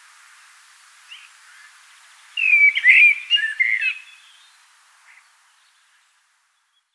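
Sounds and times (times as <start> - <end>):
common blackbird Turdus merula singing: 2.4 - 4.4.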